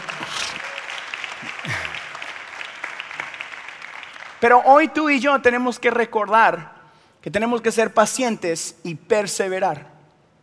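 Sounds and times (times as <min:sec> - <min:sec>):
audience clapping: 0:00.0 - 0:04.9
speech: 0:04.4 - 0:09.9.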